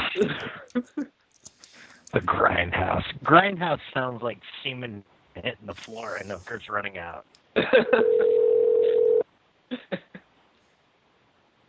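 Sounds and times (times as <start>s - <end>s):
speech: 0.2s - 1.1s, 2.1s - 8.4s
telephone dial tone while a call is placed: 8.0s - 9.2s.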